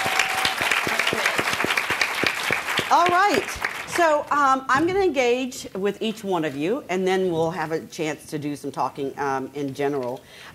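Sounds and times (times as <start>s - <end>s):
audience applauding at a sponsored event: 0.0s - 4.0s
speech: 2.9s - 10.5s.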